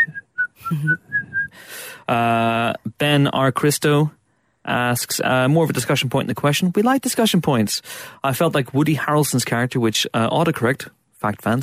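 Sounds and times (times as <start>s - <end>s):
person whistling a short wavering tune: 0.0s - 1.6s
speech: 0.7s - 11.6s.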